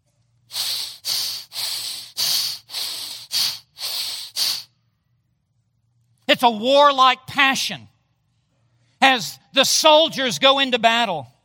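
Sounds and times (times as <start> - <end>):
heavy snorting breathing through flared nostrils: 0.5 - 4.7
speech: 6.4 - 7.9, 9.0 - 11.3.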